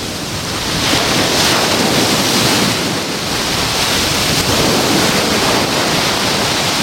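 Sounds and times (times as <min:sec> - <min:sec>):
Mediterranean sea waves breaking in wind: 0:00.0 - 0:06.8
wind buffeting the microphone: 0:00.0 - 0:06.8.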